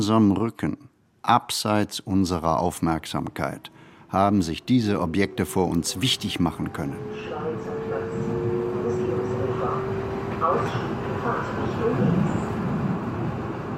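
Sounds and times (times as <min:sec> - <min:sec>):
speech: 0:00.0 - 0:07.9, 0:10.4 - 0:12.1
Frankfurt U-Bahn subway train rumbling in motion heard from inside the car: 0:02.0 - 0:13.7
indistinct voices murmuring inside a subway car: 0:03.3 - 0:12.7
whining motor tone of a subway train: 0:04.5 - 0:10.9.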